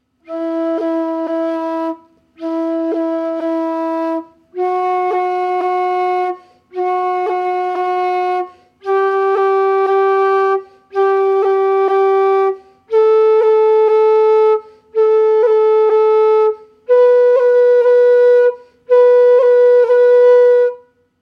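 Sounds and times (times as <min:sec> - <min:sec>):
Irish flute roll ornament: 0:00.0 - 0:21.1.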